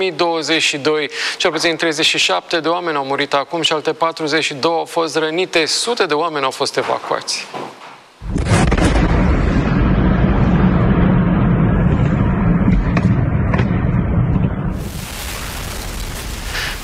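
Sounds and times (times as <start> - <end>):
speech: 0.0 - 7.8
steady hissing noise: 0.0 - 8.3, 14.7 - 16.8
huge explosion from a missile strike: 8.2 - 16.8.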